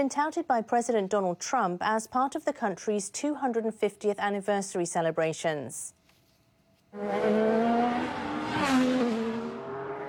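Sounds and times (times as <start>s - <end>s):
speech: 0.0s - 6.0s, 6.9s - 9.0s
IndyCar race car engines roaring during a 250-mile race: 7.0s - 10.0s.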